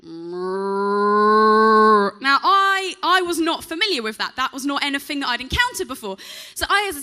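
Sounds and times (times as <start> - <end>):
human voice imitating a cow mooing: 0.0 - 2.2
speech: 3.3 - 7.0.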